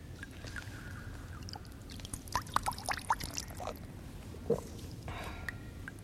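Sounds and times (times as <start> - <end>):
sharper water drips and sloshes: 0.0 - 6.0
water pouring and splashing at an old well: 1.4 - 3.9.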